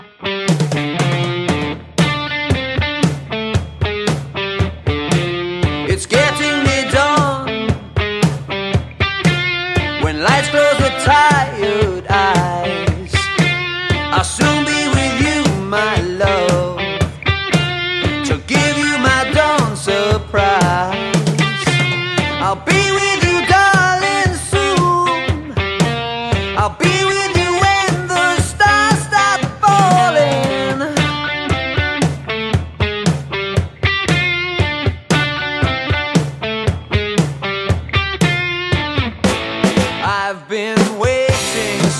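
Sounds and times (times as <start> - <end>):
bass backing track: 0.5 - 40.2, 40.8 - 41.9.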